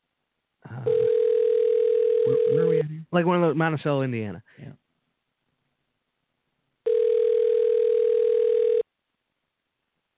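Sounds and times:
steady continuous electronic phone line ring tone: 0.8 - 2.8, 6.9 - 8.8
speech: 2.6 - 4.8.

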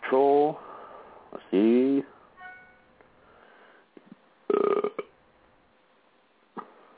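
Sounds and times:
speech: 0.1 - 0.7, 1.5 - 2.1
burp: 4.5 - 5.2.

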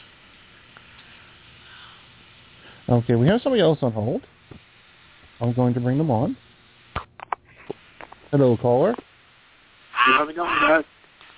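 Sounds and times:
speech: 2.9 - 4.6, 5.4 - 6.4, 8.3 - 9.1, 10.1 - 11.0
duck quacking heard over a phone line: 10.0 - 10.8.

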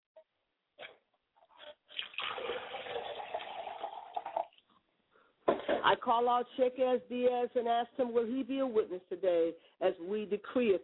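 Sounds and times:
water pouring into a glass: 1.6 - 4.6
speech: 5.8 - 10.8.

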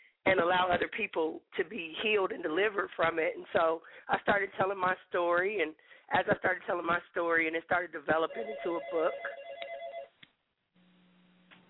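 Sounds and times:
speech: 0.2 - 9.4
electronic telephone ringing: 8.2 - 10.2.

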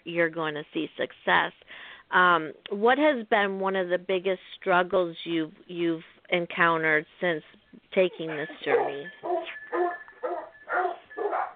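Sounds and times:
speech: 0.1 - 9.6
dog barking: 8.3 - 11.5.

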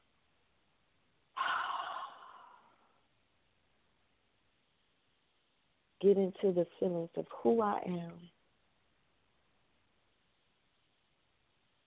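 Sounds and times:
person taking a single audible breath: 1.4 - 3.0
speech: 6.0 - 8.4.

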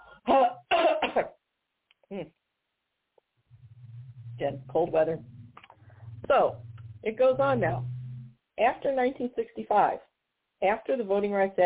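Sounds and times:
person coughing in harsh bursts: 0.2 - 1.3
person giving a short throat clear: 0.3 - 1.3
speech: 1.0 - 1.4, 2.1 - 2.4, 4.4 - 5.3, 6.3 - 7.9, 8.6 - 11.6.

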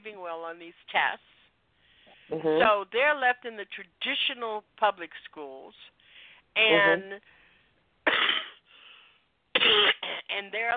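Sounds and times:
speech: 0.2 - 1.4, 2.3 - 7.4, 9.6 - 10.7
speaker giving a talk coughing harshly: 8.1 - 8.6, 9.6 - 10.3.

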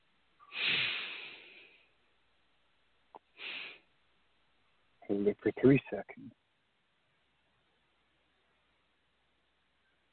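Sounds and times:
person taking a deep soft breath in through the nose during a breathing exercise: 0.4 - 2.0, 3.4 - 3.9
speech: 5.1 - 6.4.

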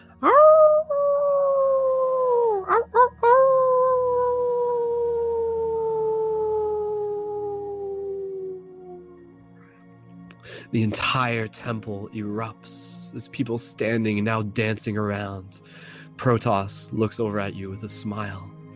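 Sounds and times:
person howling like a wolf: 0.2 - 9.2
speech: 10.7 - 18.6.

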